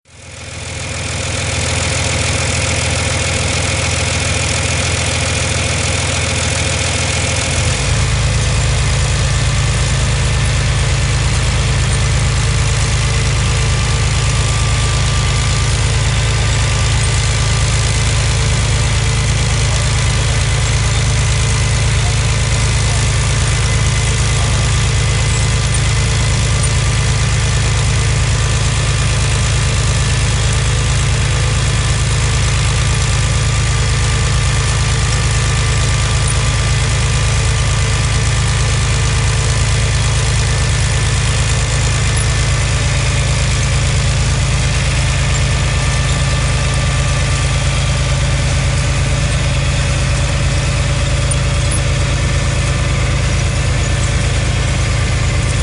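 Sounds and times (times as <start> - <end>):
tractor: 0.0 - 55.6.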